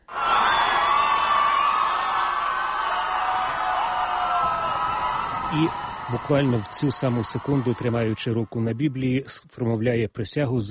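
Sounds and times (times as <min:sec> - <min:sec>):
scattered shouts: 0:00.0 - 0:08.3
large crowd cheering and whooping: 0:00.0 - 0:09.1
speech: 0:05.5 - 0:10.7.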